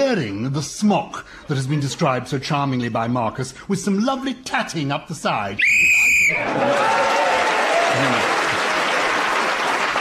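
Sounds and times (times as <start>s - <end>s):
speech: 0.1s - 7.2s, 7.9s - 8.4s
shrill whistle blast ending a round of a panel game: 5.6s - 6.5s
loud sustained crowd applause: 6.2s - 9.9s.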